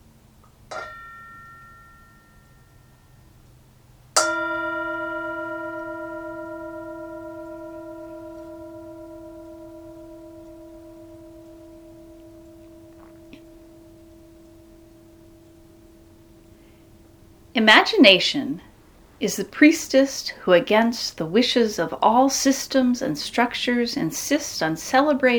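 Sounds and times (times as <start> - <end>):
meditation-style bell struck and ringing: 0.7 - 3.6, 4.2 - 19.7
speech: 17.6 - 25.3.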